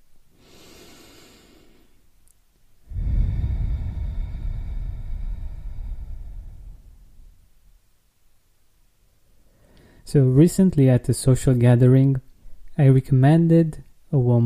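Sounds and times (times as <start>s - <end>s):
deep breath in and out: 0.3s - 2.1s, 2.8s - 7.7s, 9.4s - 10.1s
speech: 10.1s - 14.4s.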